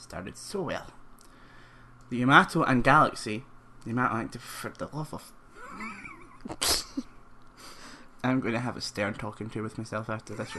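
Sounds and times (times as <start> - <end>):
speech: 0.0 - 1.0, 2.1 - 10.5
soft stifled sneeze: 6.5 - 7.1.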